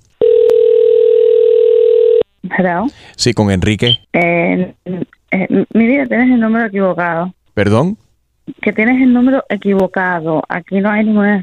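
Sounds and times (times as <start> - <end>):
telephone ringing tone on an outgoing call to an old cell phone number: 0.2 - 2.2
speech: 2.6 - 8.0, 8.6 - 11.4.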